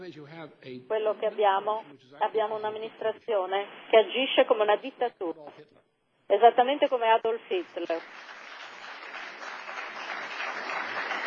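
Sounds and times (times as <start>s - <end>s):
speech: 0.1s - 8.4s
crowd applauding: 8.0s - 11.2s.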